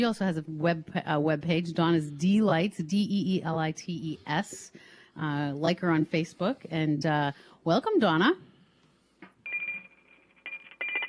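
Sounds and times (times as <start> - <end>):
speech: 0.0 - 8.5
dinner bell ringing: 9.5 - 11.0.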